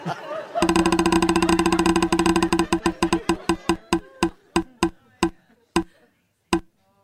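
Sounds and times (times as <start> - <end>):
laughter: 0.0 - 0.6
spinning wheel ticking against its pointer: 0.6 - 5.9.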